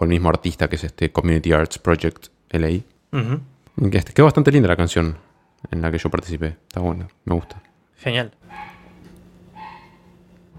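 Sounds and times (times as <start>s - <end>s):
speech: 0.0s - 8.7s
low steady hum: 0.0s - 10.5s
dog barking: 7.4s - 7.7s, 8.5s - 10.2s.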